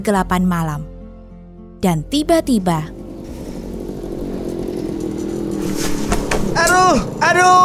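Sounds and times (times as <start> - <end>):
speech: 0.0 - 0.9, 1.8 - 3.0, 6.6 - 7.6
motorcycle engine starting, idling and revving on a village road at night: 2.0 - 7.6.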